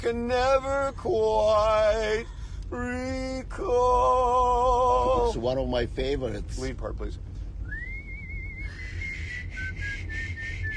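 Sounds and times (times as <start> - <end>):
speech: 0.0 - 7.3
low rumble: 0.0 - 10.7
person whistling a tune: 7.6 - 10.7.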